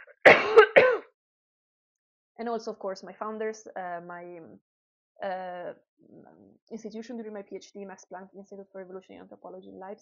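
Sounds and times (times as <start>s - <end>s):
person coughing: 0.0s - 1.1s
speech: 2.4s - 10.0s.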